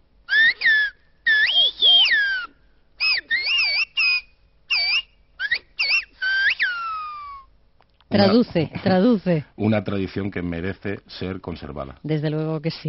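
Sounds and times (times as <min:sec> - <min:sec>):
Silbo Gomero whistled language: 0:00.3 - 0:07.5
speech: 0:08.1 - 0:12.8.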